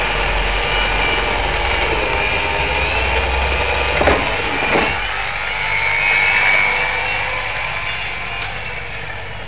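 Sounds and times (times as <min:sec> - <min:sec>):
circular saw: 0:00.0 - 0:09.4.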